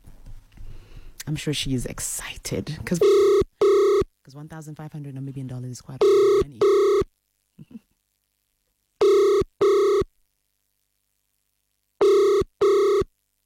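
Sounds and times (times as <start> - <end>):
speech: 1.3 - 3.4, 4.4 - 7.9
telephone ringing with electronic trills: 3.0 - 4.0, 6.0 - 7.1, 9.0 - 10.1, 12.0 - 13.1.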